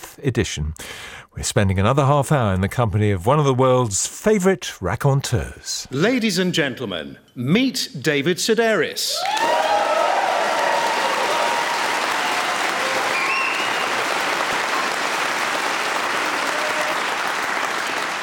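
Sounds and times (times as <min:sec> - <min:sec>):
speech: 0:00.2 - 0:09.5
scattered cheers and whoops: 0:09.1 - 0:15.2, 0:16.0 - 0:17.7
large audience applause: 0:09.2 - 0:18.2.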